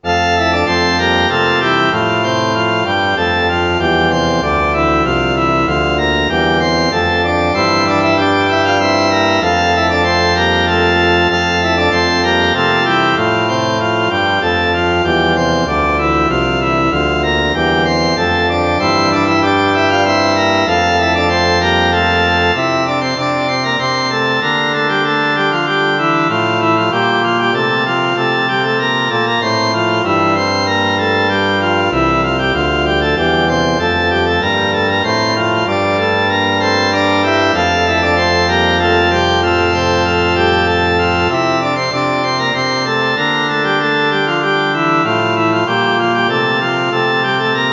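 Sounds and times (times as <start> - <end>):
organ playing a hymn: 0.0 - 47.7.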